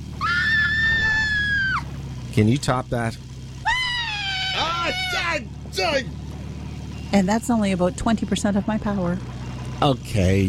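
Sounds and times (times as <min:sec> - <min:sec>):
sustained high-pitched human scream: 0:00.2 - 0:01.8, 0:03.6 - 0:05.4
speech: 0:02.4 - 0:03.3, 0:04.8 - 0:06.2, 0:07.1 - 0:10.4.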